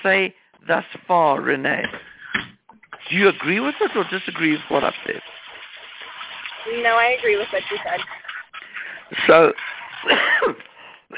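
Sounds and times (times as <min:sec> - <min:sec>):
speech: 0:00.0 - 0:02.2, 0:03.1 - 0:05.4, 0:06.6 - 0:08.3, 0:09.1 - 0:11.1
harsh throaty cough: 0:10.0 - 0:11.1.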